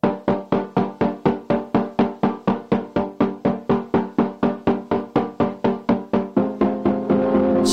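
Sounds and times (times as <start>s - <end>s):
short punchy chords of a song's instrumental intro: 0.0s - 7.7s.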